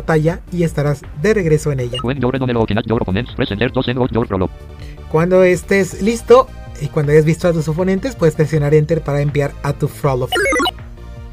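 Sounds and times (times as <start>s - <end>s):
speech: 0.0s - 10.6s
short cheerful chiming electronic jingle from an audio game marking tutorial completion: 10.3s - 10.7s.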